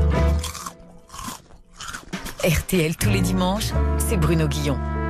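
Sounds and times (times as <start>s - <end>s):
crunching potato chips: 0.1s - 2.6s
speech: 2.4s - 4.9s.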